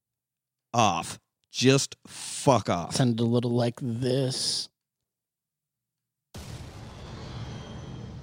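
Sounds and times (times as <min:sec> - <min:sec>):
speech: 0:00.7 - 0:04.7
gunshot blast from a movie production company logo intro: 0:06.4 - 0:08.2.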